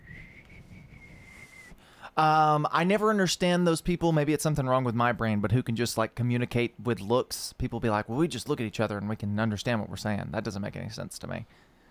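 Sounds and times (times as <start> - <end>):
person whistling a high note as communication: 0.0 - 1.8
speech: 2.2 - 11.7.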